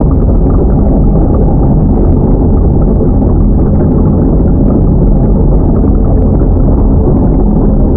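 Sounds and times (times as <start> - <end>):
big maelstrom ambience: 0.0 - 7.9.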